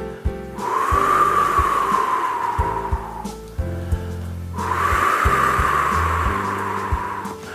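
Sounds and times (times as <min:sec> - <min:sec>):
soft steady low tones: 0:00.3 - 0:07.5
voice imitating wind through leaves by blowing through rounded lips: 0:00.6 - 0:03.5, 0:04.6 - 0:07.5.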